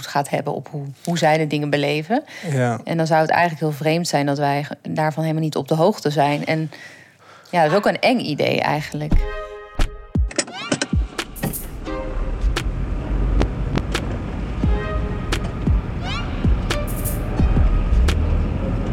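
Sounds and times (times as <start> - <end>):
speech: 0.0 - 9.4
car engine rumbling: 11.2 - 18.9.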